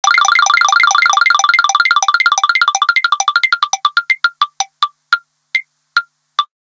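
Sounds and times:
Sony Ericsson A8i mobile phone music and vibration: 0.0 - 6.5.

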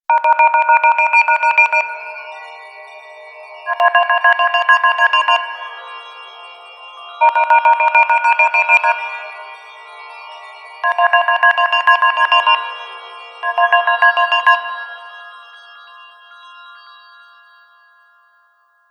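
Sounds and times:
Motorola MOTOLUXE XT615 phone ringtone: 0.1 - 2.8, 3.4 - 6.4, 7.2 - 9.6, 10.8 - 15.5.

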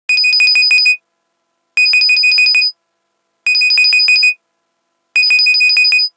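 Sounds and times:
phone ring alerting: 0.1 - 1.0, 1.8 - 2.7, 3.5 - 4.4, 5.2 - 6.1.

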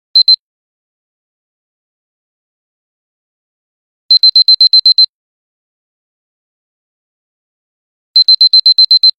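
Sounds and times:
Nokia 515 phone alarm beeping: 0.2 - 0.4, 4.1 - 5.1, 8.2 - 9.1.

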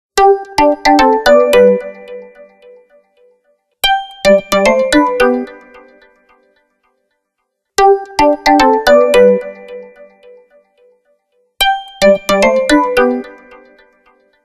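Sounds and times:
mobile phone ringtone: 0.2 - 2.4, 3.8 - 5.7, 7.8 - 10.2, 11.6 - 13.6.

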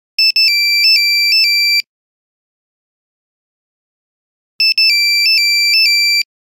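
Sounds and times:
Nokia phone buzzer: 0.2 - 1.9, 4.6 - 6.3.

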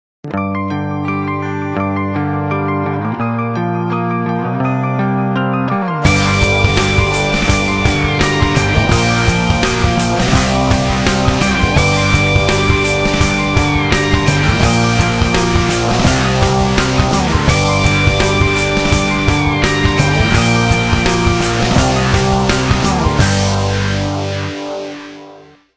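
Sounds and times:
rock ringtone on a mobile phone: 0.5 - 25.5.

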